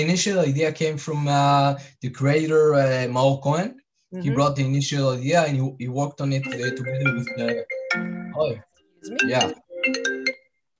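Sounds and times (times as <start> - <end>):
speech: 0.0 - 10.2
computer notification ringing in bright electronic chiming bursts: 6.4 - 10.4.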